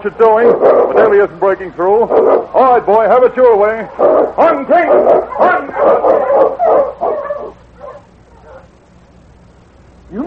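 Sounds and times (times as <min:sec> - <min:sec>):
speech: 0:00.0 - 0:06.8
sled dog barking loudly: 0:00.4 - 0:01.2, 0:02.0 - 0:02.7, 0:03.9 - 0:08.8.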